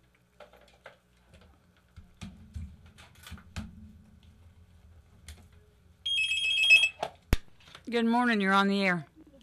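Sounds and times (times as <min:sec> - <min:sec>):
telephone ringing with electronic trill: 0:06.1 - 0:07.0
speech: 0:07.9 - 0:09.1.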